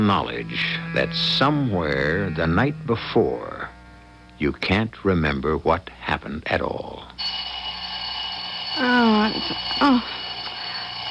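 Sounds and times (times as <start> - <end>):
alarm clock ringing: 0.0 - 1.9, 7.2 - 11.0
speech: 0.0 - 3.7, 4.4 - 7.4, 8.8 - 10.2.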